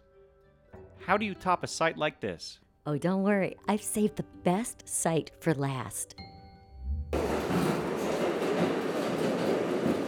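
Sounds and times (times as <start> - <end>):
speech: 1.0 - 6.3
low hum: 6.7 - 7.5
subway train rumbling along rails: 7.1 - 10.0.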